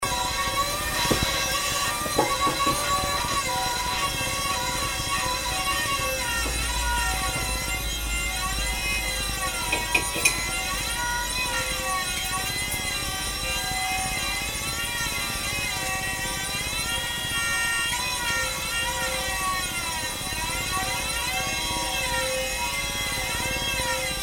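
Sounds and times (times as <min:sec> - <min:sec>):
singing kettle whistling: 0:00.0 - 0:24.2.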